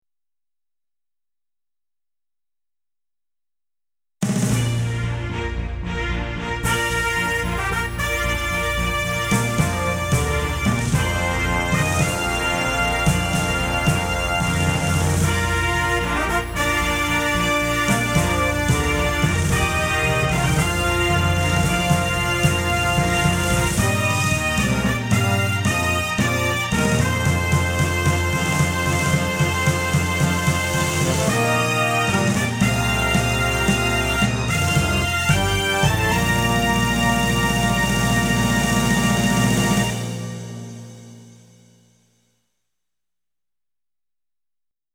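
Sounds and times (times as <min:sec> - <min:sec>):
golf fanfare: 0:04.3 - 0:41.1.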